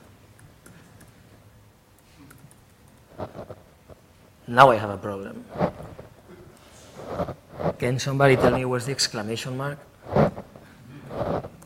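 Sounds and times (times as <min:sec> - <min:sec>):
typing on a UK computer keyboard: 0:02.2 - 0:03.1, 0:11.5 - 0:11.6
speech: 0:04.5 - 0:05.7, 0:07.8 - 0:10.3.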